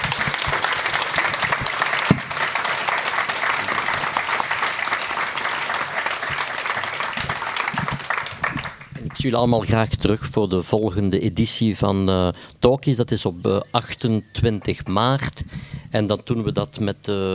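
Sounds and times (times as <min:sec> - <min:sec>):
audience applause: 0:00.0 - 0:09.4
speech: 0:09.2 - 0:17.3.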